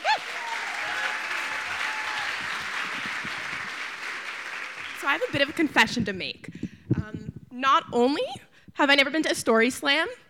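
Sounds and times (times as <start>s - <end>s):
person whooping: 0.0s - 2.7s
crowd applauding: 0.0s - 5.8s
speech: 5.0s - 6.6s, 7.6s - 10.2s.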